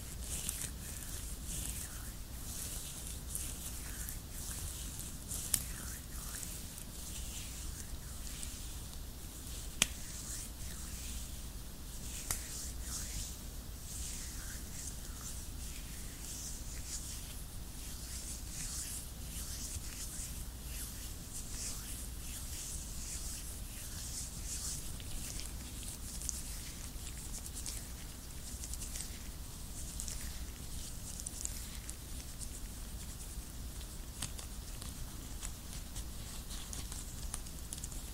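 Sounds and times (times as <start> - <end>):
faint low hum: 0.0 - 38.1
latex gloves rubbing together: 0.0 - 38.1
sharper snaps of latex gloves: 9.8 - 10.2.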